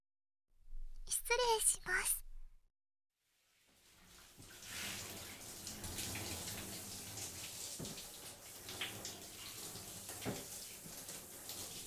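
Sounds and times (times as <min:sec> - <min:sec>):
speech: 0:01.3 - 0:02.2
shower water running onto hair: 0:03.3 - 0:11.8.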